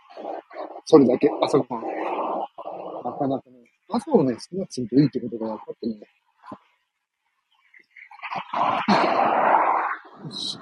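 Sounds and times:
dog growling and snarling: 0.0 - 3.6, 8.1 - 10.6
speech: 0.2 - 2.0, 3.2 - 6.6, 8.5 - 9.1, 10.2 - 10.6.

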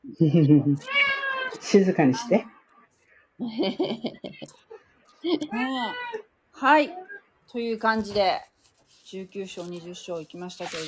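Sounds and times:
speech: 0.2 - 2.6, 3.4 - 8.5, 9.1 - 10.8
cat meowing: 0.8 - 1.6.

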